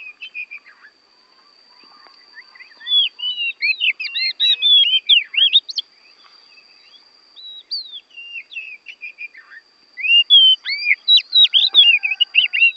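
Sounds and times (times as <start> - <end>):
faint constant high tone: 0.0 - 12.7
Oriental magpie-robin from Borneo singing varied whistled phrases: 2.3 - 5.8, 6.8 - 12.7.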